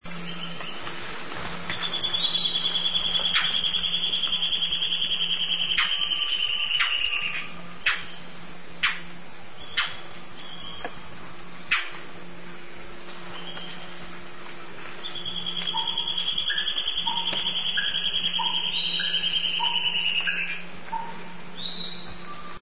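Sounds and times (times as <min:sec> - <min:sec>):
white-browed antbird calling: 0:00.1 - 0:12.3, 0:13.1 - 0:22.6.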